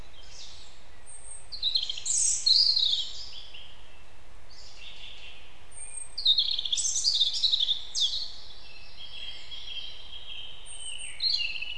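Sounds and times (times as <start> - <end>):
European robin Erithacus rubecula song: 0.0 - 11.7
low continuous background noise: 0.0 - 11.7.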